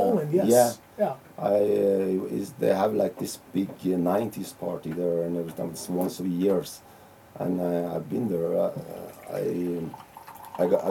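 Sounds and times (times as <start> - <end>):
speech: 0.3 - 10.0, 10.6 - 10.9
coffee pouring into a cup: 8.9 - 10.9.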